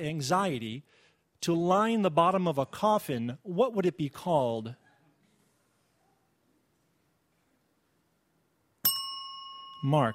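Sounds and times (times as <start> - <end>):
speech: 0.0 - 4.8, 9.8 - 10.1
bright metallic quiz ring-in bell ding: 8.8 - 10.1.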